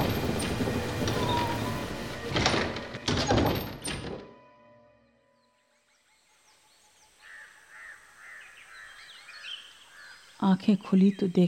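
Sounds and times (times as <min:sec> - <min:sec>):
heavy door creaking and banging open and shut in strong wind: 0:00.0 - 0:04.4
strong wind: 0:00.0 - 0:11.4
door chain rattling: 0:01.0 - 0:04.3
faint bird calls: 0:05.8 - 0:10.4
speech: 0:10.4 - 0:11.4.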